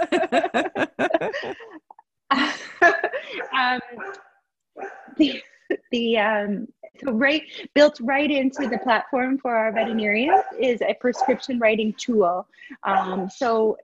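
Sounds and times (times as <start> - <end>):
speech: 0.0 - 0.8, 6.2 - 13.8
laughter: 0.0 - 3.5
several dogs barking: 3.4 - 5.2, 8.6 - 9.0, 9.7 - 10.6, 11.2 - 11.5.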